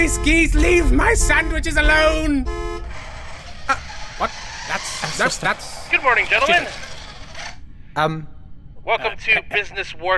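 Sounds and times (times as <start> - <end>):
short nasal goose-like honks from a spaceship hatch: 0.0 - 0.9, 2.5 - 3.4
speech: 0.0 - 2.8, 3.7 - 6.8, 8.0 - 10.1.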